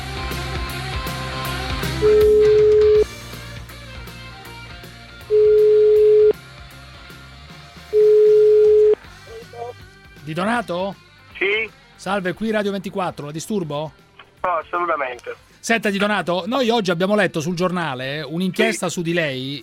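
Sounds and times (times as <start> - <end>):
telephone ringback tone while calling someone: 2.0 - 3.1, 5.3 - 6.4, 7.9 - 9.0
speech: 10.4 - 19.6.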